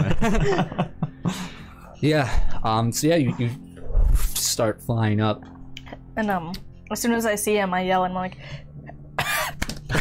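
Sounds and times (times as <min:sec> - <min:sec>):
laughter: 0:00.0 - 0:01.6
speech: 0:00.2 - 0:03.7, 0:04.4 - 0:05.6, 0:06.2 - 0:08.6
person coughing from choking on something down the wrong pipe: 0:09.2 - 0:09.9.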